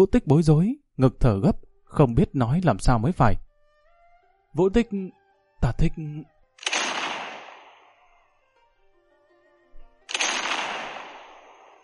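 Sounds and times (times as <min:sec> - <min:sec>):
speech: 0:00.0 - 0:03.4, 0:04.5 - 0:06.7
distant cannon fire booming: 0:06.6 - 0:07.9, 0:10.1 - 0:11.8.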